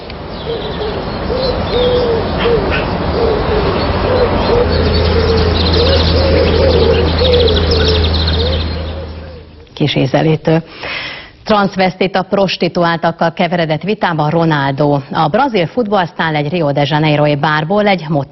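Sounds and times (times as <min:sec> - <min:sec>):
low hum: 0:00.0 - 0:18.3
high bird chirps and trills: 0:00.2 - 0:09.6
low cooing birdsong notes from a radio programme: 0:00.4 - 0:09.7
speech: 0:00.5 - 0:02.0, 0:09.8 - 0:18.3.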